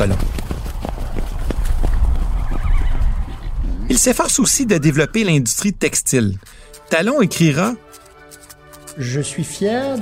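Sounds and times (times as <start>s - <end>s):
speech: 0.0s - 0.4s, 3.9s - 7.8s, 9.0s - 9.9s
horse hooves clip-clopping: 0.0s - 9.9s
horse neighing: 2.4s - 5.6s.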